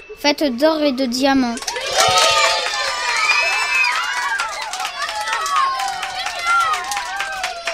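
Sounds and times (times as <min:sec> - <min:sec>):
speech: 0:00.2 - 0:02.2
lively crowd cheering: 0:00.8 - 0:07.7
scattered clapping: 0:01.4 - 0:07.7
excited shouts, whoops and high squeals: 0:01.6 - 0:07.7.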